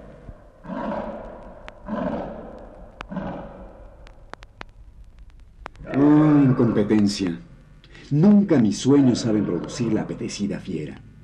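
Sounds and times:
tiger roaring: 0.0 - 3.9, 5.8 - 7.4, 8.5 - 10.6
sharp clicks: 0.0 - 8.0
low hum: 0.0 - 11.2
speech: 6.6 - 7.5, 8.1 - 11.0.

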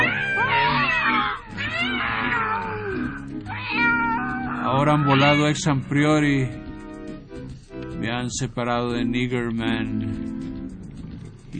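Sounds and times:
cat yowling in long wavering cries: 0.0 - 5.6
speech: 4.8 - 6.6, 8.0 - 10.3.

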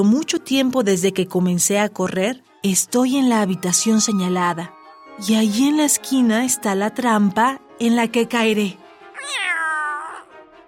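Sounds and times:
speech: 0.0 - 9.4
drawn-out cat meow: 9.1 - 10.3.

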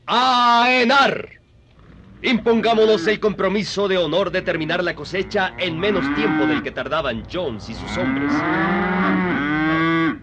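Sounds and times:
speech: 0.1 - 1.4, 2.2 - 9.5
cow mooing: 1.8 - 3.4, 4.7 - 6.8, 7.6 - 10.2.

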